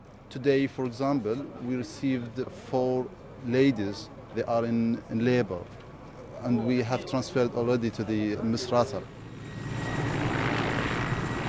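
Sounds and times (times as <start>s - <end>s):
speech: 0.4s - 5.8s, 6.4s - 9.2s
aging Russian-made helicopter taking off: 6.4s - 11.4s.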